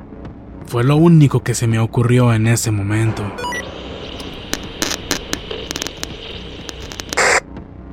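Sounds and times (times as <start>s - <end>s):
speech: 0.6s - 3.8s
harsh static hissing from a radio: 3.4s - 7.4s.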